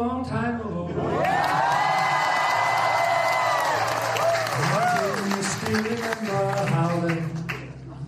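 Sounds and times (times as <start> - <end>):
dinner audience cheering and whooping: 1.0 - 5.7
dinner audience applauding at a state dinner: 1.1 - 7.8.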